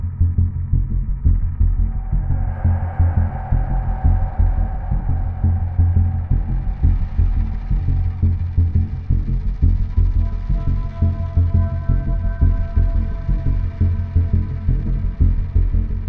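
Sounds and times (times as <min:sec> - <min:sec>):
synth bass thunder: 0:00.2 - 0:16.0.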